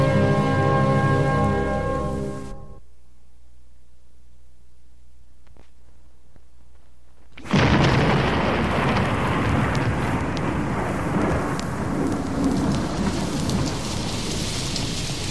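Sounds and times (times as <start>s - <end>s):
heavy rain pouring: 0.0s - 2.5s, 7.4s - 15.3s
thunder rumbling: 0.0s - 2.8s, 7.4s - 15.3s.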